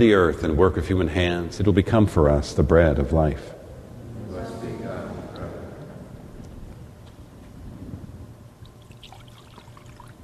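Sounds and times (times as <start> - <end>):
speech: 0.0 - 3.6
small amount of water trickling into wine in a chalice: 8.6 - 10.2.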